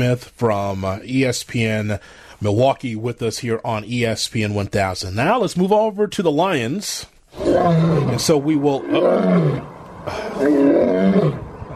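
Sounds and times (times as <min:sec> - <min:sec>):
speech: 0:00.0 - 0:11.4
lion roaring: 0:07.3 - 0:11.7.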